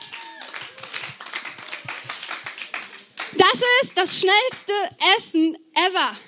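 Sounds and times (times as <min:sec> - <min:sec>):
crowd clapping: 0:00.0 - 0:04.6
speech: 0:03.4 - 0:06.2.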